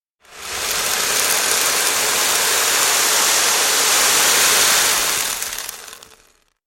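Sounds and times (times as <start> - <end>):
coffee beans: 0.2 - 6.6.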